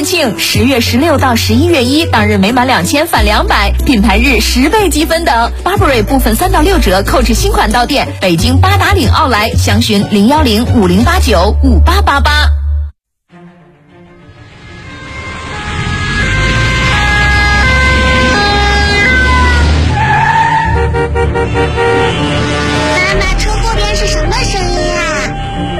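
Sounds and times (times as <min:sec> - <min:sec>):
speech: 0:00.0 - 0:12.6
ambulance siren wailing in a traffic jam: 0:14.4 - 0:25.7
car engines rumbling in heavy traffic: 0:14.8 - 0:25.7.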